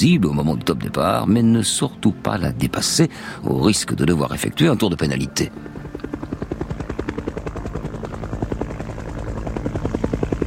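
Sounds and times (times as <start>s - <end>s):
speech: 0.0s - 6.1s
race organisation's helicopter rotor beating: 1.4s - 10.4s.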